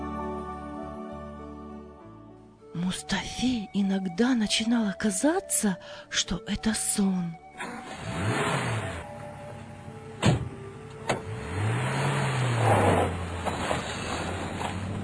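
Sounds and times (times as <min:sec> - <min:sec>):
speech: 0:02.8 - 0:07.7
fast-moving car engine hum: 0:07.6 - 0:15.0.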